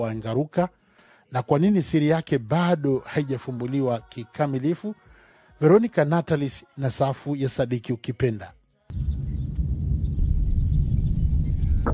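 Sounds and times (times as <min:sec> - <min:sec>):
speech: 0:00.0 - 0:05.0, 0:05.6 - 0:09.2
faint bird chirps at Engaruka: 0:08.9 - 0:11.9
wind rumbling through an outdoor wildlife setting at Engaruka: 0:08.9 - 0:11.9.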